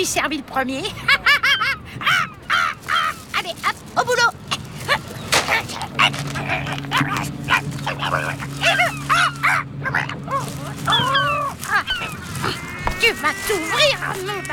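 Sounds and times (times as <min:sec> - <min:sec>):
speech: 0:00.0 - 0:01.2, 0:13.2 - 0:14.5
laughter: 0:00.8 - 0:02.8
herring gull yelping and squealing: 0:01.0 - 0:03.8, 0:04.5 - 0:14.5
steady low engine-like hum: 0:01.6 - 0:14.5
plastic garbage bag ripping and crinkling: 0:02.8 - 0:09.5, 0:10.2 - 0:14.5.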